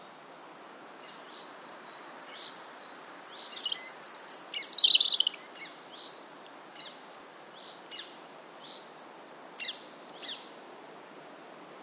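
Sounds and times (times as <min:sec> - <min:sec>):
steady background hiss: 0:00.0 - 0:11.8
European robin Erithacus rubecula singing whistles and trills: 0:03.4 - 0:05.5.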